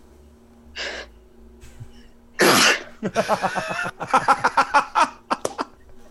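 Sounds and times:
breathy inhale: 0.8 - 1.2
person sneezing: 2.4 - 3.0
laughter: 3.0 - 5.8.

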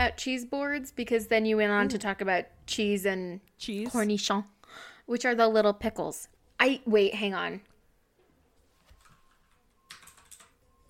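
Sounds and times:
speech: 0.0 - 7.7
computer keyboard typing: 8.8 - 10.8.

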